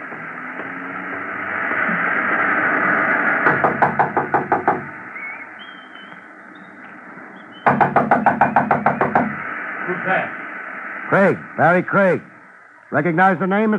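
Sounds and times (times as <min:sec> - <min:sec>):
low hum: 0:00.0 - 0:13.7
firm knocking on a door: 0:03.4 - 0:04.9, 0:07.6 - 0:09.4
speech: 0:11.1 - 0:12.3, 0:12.9 - 0:13.7.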